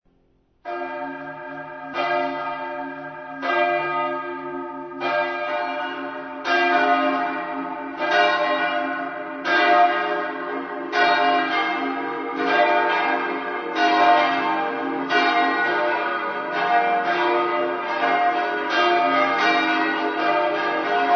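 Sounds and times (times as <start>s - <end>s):
parish church bells ringing: 0.6s - 21.1s.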